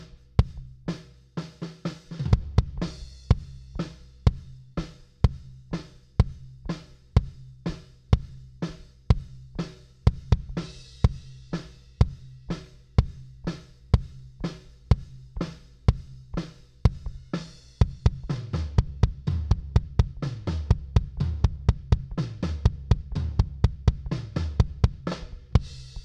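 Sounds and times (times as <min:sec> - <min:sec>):
kick drum: 0:00.4 - 0:00.7, 0:02.3 - 0:03.6, 0:04.3 - 0:04.6, 0:05.3 - 0:05.6, 0:06.2 - 0:06.6, 0:07.2 - 0:07.5, 0:08.2 - 0:08.5, 0:09.1 - 0:09.5, 0:10.1 - 0:11.3, 0:12.0 - 0:12.3, 0:13.0 - 0:13.3, 0:13.9 - 0:14.3, 0:14.9 - 0:16.3, 0:16.9 - 0:25.9.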